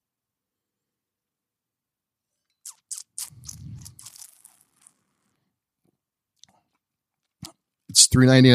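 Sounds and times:
mouth smacking while tasting wine: 0:02.6 - 0:04.9
person taking a noisy sip of wine: 0:02.7 - 0:04.7
speech: 0:08.0 - 0:08.5.

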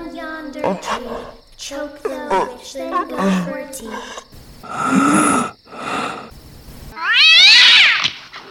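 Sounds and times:
speech: 0:00.7 - 0:05.5
cat yowling and screeching after being tripped over: 0:06.9 - 0:08.2.

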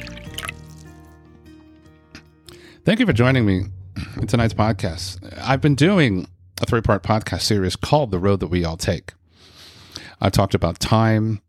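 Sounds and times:
drink gurgling and splashing into a glass: 0:00.0 - 0:01.2
speech: 0:02.8 - 0:09.2, 0:10.2 - 0:11.4.

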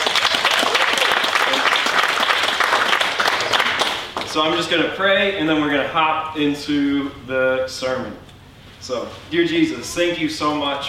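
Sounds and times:
church audience applauding: 0:00.0 - 0:04.4
speech: 0:04.4 - 0:10.8.

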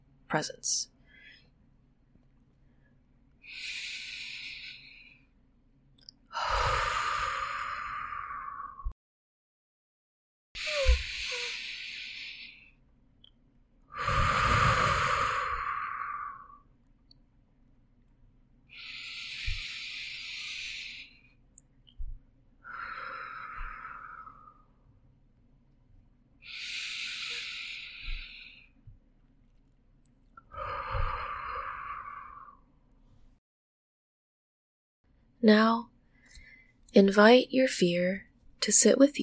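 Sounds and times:
speech: 0:00.3 - 0:00.9, 0:35.4 - 0:35.9, 0:37.0 - 0:39.2
slow deep breathing close to the microphone: 0:02.6 - 0:05.4, 0:06.3 - 0:08.9, 0:10.6 - 0:12.8, 0:13.9 - 0:16.7, 0:18.7 - 0:24.9, 0:26.4 - 0:28.9, 0:30.4 - 0:32.7.

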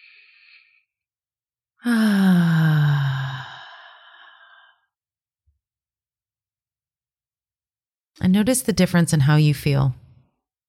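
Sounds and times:
deep breath exhaled through the mouth during a guided forgiveness meditation: 0:01.8 - 0:04.9
speech: 0:08.3 - 0:10.0.

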